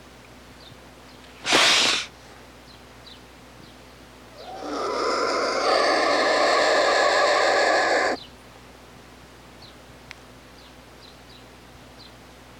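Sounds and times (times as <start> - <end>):
Black vulture hissing: 1.4 - 2.1, 4.3 - 8.2.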